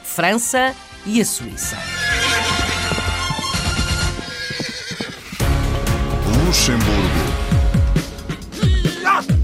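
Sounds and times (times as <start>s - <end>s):
speech: 0.2s - 2.0s, 6.5s - 7.4s
horse neighing: 1.6s - 5.4s, 8.5s - 9.3s
horse hooves clopping: 1.6s - 5.8s.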